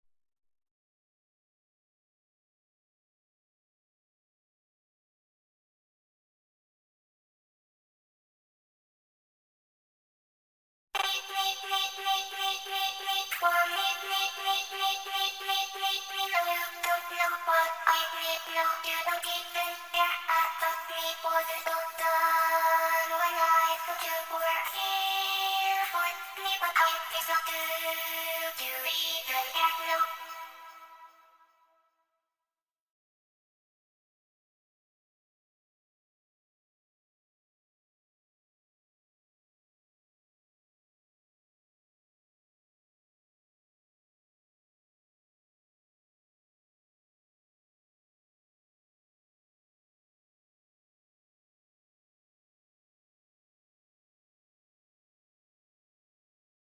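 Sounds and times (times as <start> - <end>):
extra vocals: 11.0 - 31.4.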